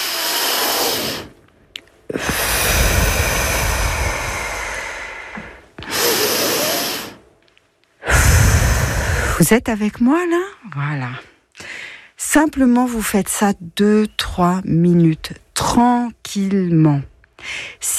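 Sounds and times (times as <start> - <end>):
deep breathing during a relaxation exercise: 0.0 - 1.4, 2.1 - 7.2, 8.0 - 9.5, 11.4 - 12.2, 17.4 - 17.8
speech: 9.4 - 11.3, 12.2 - 17.9.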